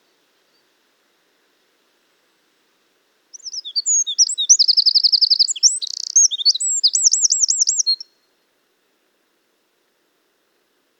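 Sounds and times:
Eurasian wren singing, Troglodytes troglodytes: 3.4s - 8.0s.

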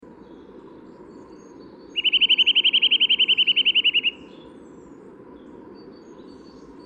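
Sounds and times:
steady low background noise: 0.0s - 6.8s
Eurasian nuthatch Sitta europaea giving a fast whistled trill: 2.0s - 4.3s.

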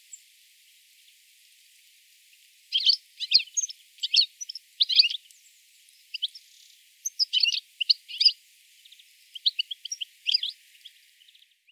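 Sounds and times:
European goldfinch Carduelis carduelis twittering calls: 2.7s - 5.4s, 6.0s - 11.4s.

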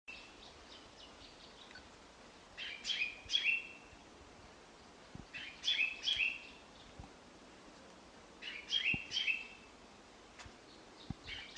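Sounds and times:
common chaffinch giving clipped high chirps: 0.1s - 4.0s, 4.8s - 7.0s, 8.4s - 9.7s, 10.6s - 11.5s.

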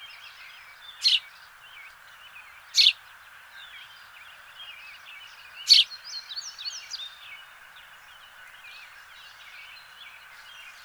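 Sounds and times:
house sparrow Passer domesticus rasping chirps: 0.9s - 1.4s, 2.6s - 3.0s, 5.5s - 7.0s.

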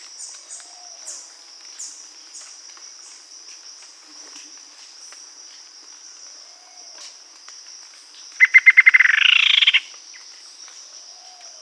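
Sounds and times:
bird trilling: 8.4s - 9.9s.

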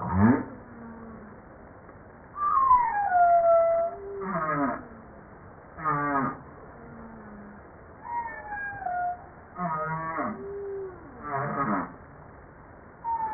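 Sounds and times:
humpback whale song: 2.4s - 4.9s, 7.0s - 12.0s, 13.0s - 13.3s.

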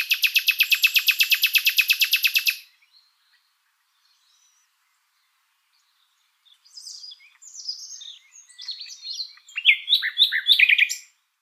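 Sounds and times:
common nightingale Luscinia megarhynchos singing: 0.0s - 11.4s.

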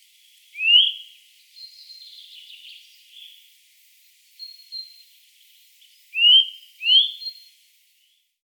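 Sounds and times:
Eurasian nuthatch (Sitta europaea) upslurred whistles: 0.6s - 1.0s.

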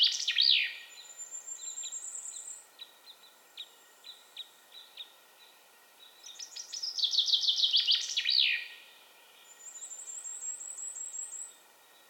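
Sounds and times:
Common chaffinch Fringilla coelebs song: 0.0s - 12.0s.

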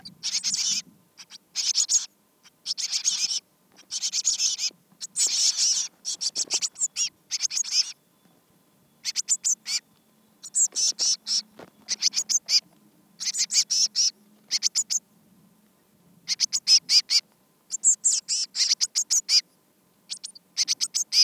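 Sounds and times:
Eurasian blue tit Cyanistes caeruleus calling in high-pitched rattling bursts: 0.2s - 8.0s, 9.0s - 9.8s, 10.4s - 12.6s, 13.2s - 15.0s, 16.3s - 19.4s, 20.1s - 21.2s.

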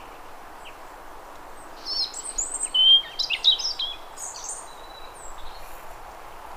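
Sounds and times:
European robin Erithacus rubecula singing: 1.6s - 5.7s.

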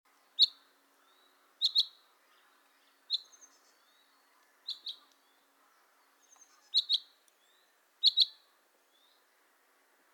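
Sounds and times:
Common chaffinch Fringilla coelebs giving short sharp high chip calls: 0.4s - 2.0s, 3.1s - 5.3s, 6.2s - 8.5s.

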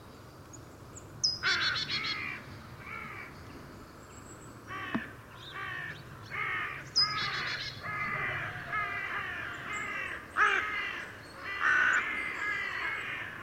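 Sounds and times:
Carrion crow giving harsh hoarse caws: 1.4s - 3.3s, 4.7s - 13.4s.

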